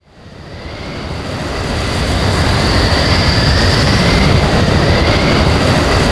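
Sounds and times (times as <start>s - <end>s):
twister approaching a ship: 0.0s - 6.1s.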